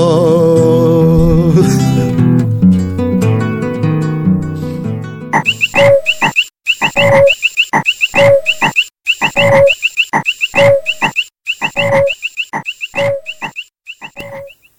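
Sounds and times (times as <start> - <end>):
music: 0.0 - 6.1
toad croaking: 5.4 - 14.7.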